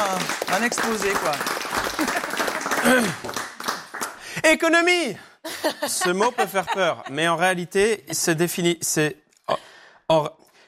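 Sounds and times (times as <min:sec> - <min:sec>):
audience applauding a speaker before his presentation: 0:00.0 - 0:04.5
speech: 0:00.2 - 0:03.4, 0:04.4 - 0:10.4
laughter: 0:01.8 - 0:03.2, 0:05.5 - 0:08.5.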